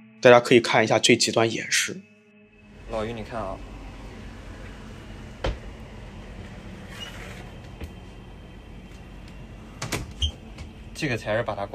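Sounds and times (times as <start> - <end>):
speech: 0.2 - 2.1, 2.9 - 3.7, 11.0 - 11.7
low hum: 1.4 - 11.7
faulty motorized CT scanning room door opening with clunks: 3.9 - 8.2, 8.8 - 10.9.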